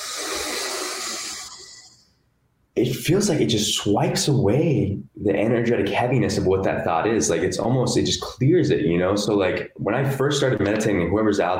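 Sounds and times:
long deep inhale: 0:00.0 - 0:02.3
speech: 0:02.8 - 0:11.5.

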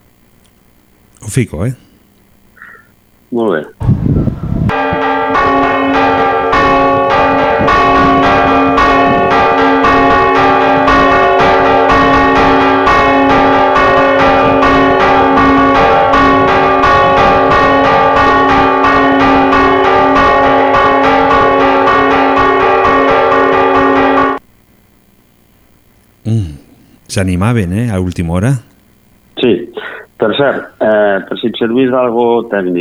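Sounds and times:
speech: 0:01.2 - 0:01.9, 0:03.3 - 0:04.2, 0:27.1 - 0:28.7, 0:29.4 - 0:29.6, 0:30.2 - 0:32.7
two large church bells pealing to ward off a storm: 0:04.7 - 0:24.4.

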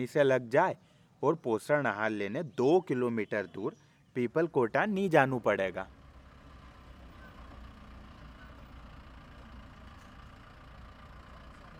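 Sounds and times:
speech: 0:00.0 - 0:06.0
pickup truck engine idling in front of a restaurant in Satwas: 0:05.7 - 0:11.7.

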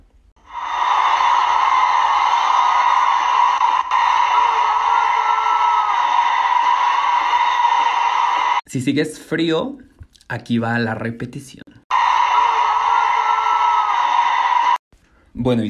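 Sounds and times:
distant shout from concert crowd: 0:00.4 - 0:08.6, 0:11.9 - 0:14.8
loud sustained concert crowd roar: 0:00.4 - 0:08.6, 0:11.9 - 0:14.8
speech: 0:08.7 - 0:11.6, 0:15.4 - 0:15.6.

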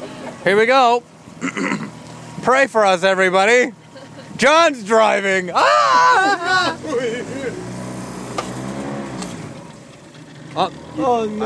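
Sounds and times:
old pontoon boat motor chugging and revving: 0:00.0 - 0:11.4
speech: 0:00.4 - 0:03.8, 0:04.4 - 0:07.1, 0:10.6 - 0:11.4
laughter: 0:03.8 - 0:04.4, 0:05.5 - 0:07.7
excited voices: 0:04.4 - 0:07.7.

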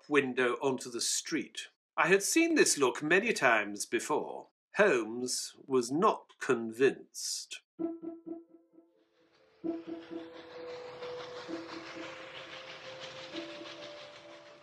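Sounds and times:
speech: 0:00.1 - 0:08.4
metallic clanks of an evening train on rails: 0:09.6 - 0:14.6.

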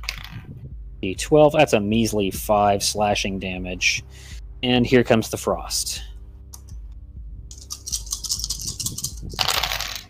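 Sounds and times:
handful of dice being rolled: 0:00.0 - 0:00.4, 0:07.5 - 0:10.0
speech: 0:01.0 - 0:06.1.

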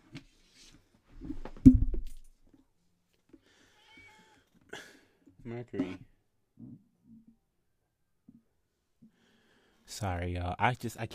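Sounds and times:
big gray cat meowing loudly: 0:03.7 - 0:04.5
speech: 0:05.5 - 0:06.8, 0:10.0 - 0:11.1.

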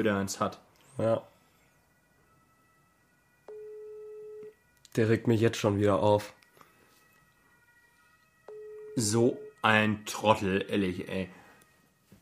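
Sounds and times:
speech: 0:00.0 - 0:01.3, 0:05.0 - 0:06.4, 0:09.0 - 0:11.4
telephone ringback tone of unanswered call: 0:03.4 - 0:04.6, 0:08.4 - 0:09.6.

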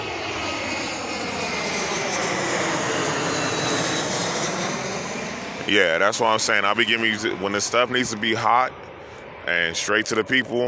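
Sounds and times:
aircraft engine roar near an airport: 0:00.0 - 0:10.6
speech: 0:05.7 - 0:08.9, 0:09.5 - 0:10.6.

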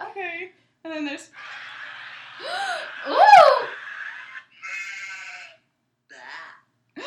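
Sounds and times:
speech: 0:00.4 - 0:01.5
laughter: 0:01.3 - 0:05.6
woman's exaggerated disgusted bleating groan: 0:03.1 - 0:03.7.

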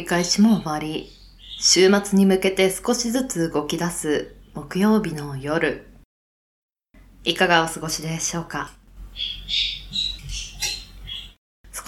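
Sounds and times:
speech: 0:00.0 - 0:05.9, 0:07.2 - 0:09.8
pet parakeet chirping and squawking at home: 0:00.2 - 0:01.8, 0:09.1 - 0:11.4.

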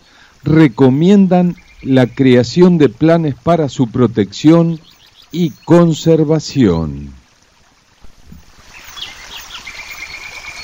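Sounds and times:
rushing water: 0:00.0 - 0:10.6
speech: 0:00.4 - 0:07.2
birds chirping and whistling: 0:00.6 - 0:02.4, 0:04.7 - 0:06.1, 0:08.7 - 0:10.6.

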